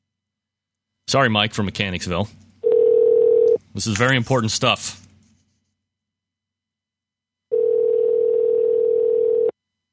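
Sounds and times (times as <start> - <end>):
speech: 1.1 - 2.4, 3.8 - 5.0
steady telephone dial tone: 2.6 - 3.6, 7.5 - 9.6.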